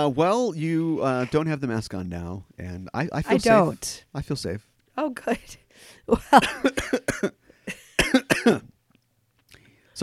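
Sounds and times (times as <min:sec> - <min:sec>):
speech: 0:00.0 - 0:07.8, 0:08.4 - 0:08.7
person coughing: 0:06.4 - 0:08.7.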